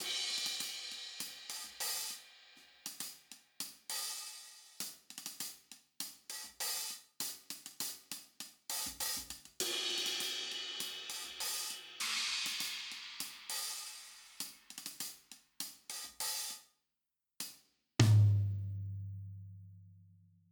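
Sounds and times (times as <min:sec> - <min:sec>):
tom drum: 0:00.0 - 0:02.0, 0:08.7 - 0:15.0, 0:18.0 - 0:19.4
cymbal: 0:00.0 - 0:05.5, 0:08.7 - 0:16.6
hi-hat: 0:00.0 - 0:16.6.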